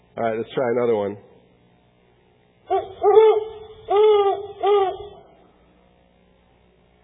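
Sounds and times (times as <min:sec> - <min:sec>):
speech: 0:00.2 - 0:01.3
owl hooting: 0:02.7 - 0:05.5.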